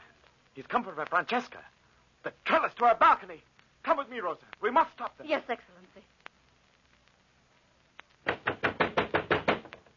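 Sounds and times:
speech: 0:00.6 - 0:06.2
heavy knocking on a wooden door: 0:08.3 - 0:09.8.

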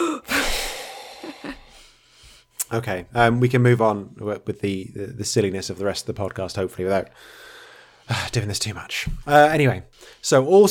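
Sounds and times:
person drawing a big deep breath: 0:00.0 - 0:02.5, 0:07.2 - 0:08.1
speech: 0:02.7 - 0:10.6.

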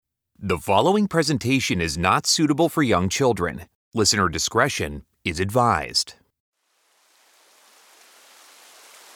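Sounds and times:
speech: 0:00.4 - 0:06.2
steady rain: 0:06.6 - 0:09.1.

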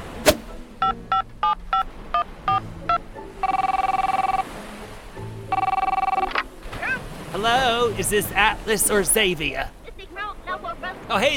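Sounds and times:
telephone ringing with electronic trills: 0:00.8 - 0:01.9, 0:02.5 - 0:04.4, 0:05.5 - 0:06.4
short keypad beeps: 0:02.5 - 0:04.4, 0:05.5 - 0:06.3
speech: 0:07.4 - 0:09.8, 0:11.1 - 0:11.3.

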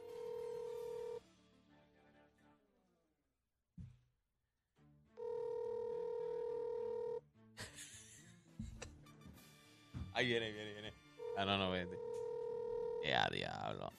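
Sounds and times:
electronic phone ring tones through a speakerphone: 0:00.0 - 0:01.2, 0:05.2 - 0:07.2, 0:11.2 - 0:13.3
laughter: 0:07.6 - 0:09.0
speech: 0:10.2 - 0:12.2, 0:13.0 - 0:13.9.

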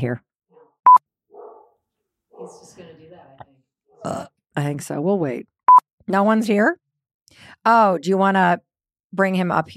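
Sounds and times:
speech: 0:00.0 - 0:00.3, 0:02.4 - 0:05.5, 0:06.1 - 0:09.7
dog barking at a distance: 0:00.5 - 0:02.8.

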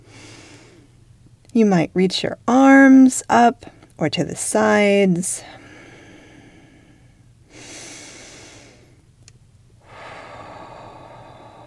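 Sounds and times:
deep breathing while stretching: 0:00.0 - 0:01.0, 0:05.5 - 0:09.0, 0:09.8 - 0:11.6
faint steady hum: 0:00.0 - 0:11.6
speech: 0:01.5 - 0:05.6.

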